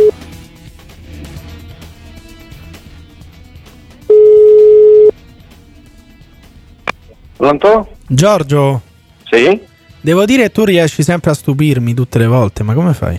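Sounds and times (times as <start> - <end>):
telephone ringing tone of outgoing call: 0.0 - 0.2, 4.1 - 8.1
speech: 7.4 - 13.1.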